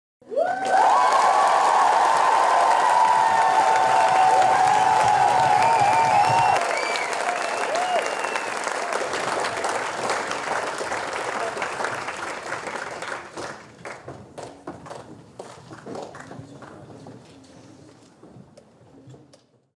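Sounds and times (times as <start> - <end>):
people cheering: 0.2 - 13.2.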